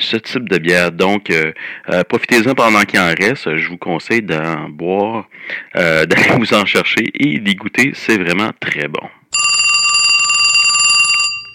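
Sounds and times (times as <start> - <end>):
speech: 0.1 - 9.2
telephone ringing with a bright metallic trill: 9.3 - 11.5.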